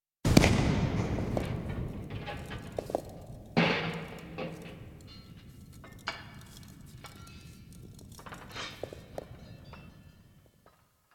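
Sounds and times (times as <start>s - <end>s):
dynamite explosion: 0.2s - 5.1s
falling debris: 0.3s - 10.6s.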